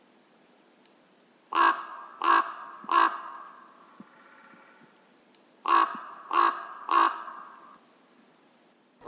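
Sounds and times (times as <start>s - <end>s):
common raven croaking on the plain in Moselle: 1.5s - 7.9s.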